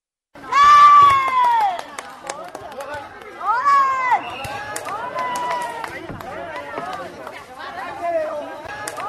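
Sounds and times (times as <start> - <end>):
spectators cheering at volleyball match: 0.4 - 2.2, 3.4 - 7.1.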